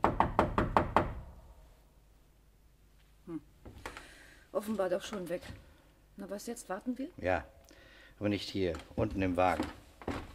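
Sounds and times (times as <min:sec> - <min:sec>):
knocking on a door in a building corridor: 0:00.0 - 0:01.3
speech: 0:04.6 - 0:07.6, 0:08.2 - 0:09.8.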